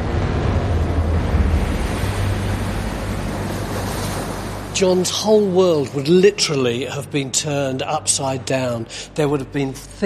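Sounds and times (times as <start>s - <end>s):
waves surging: 0.0s - 6.5s
water rushing: 0.0s - 9.8s
speech: 4.8s - 10.0s.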